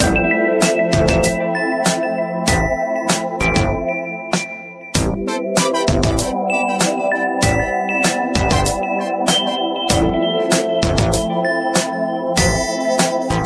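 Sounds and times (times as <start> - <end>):
LG Anticipa phone ringtone: 0.1 - 13.3.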